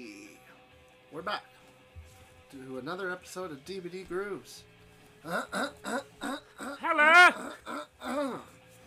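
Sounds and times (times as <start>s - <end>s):
speech: 1.2s - 1.6s, 2.5s - 8.5s
throat clearing: 5.2s - 8.6s.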